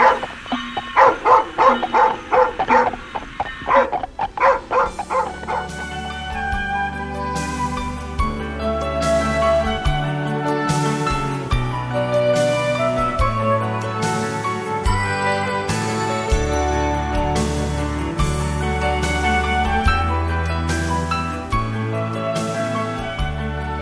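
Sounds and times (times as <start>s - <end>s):
dog barking: 0.0s - 5.9s
sustained music: 0.0s - 23.8s.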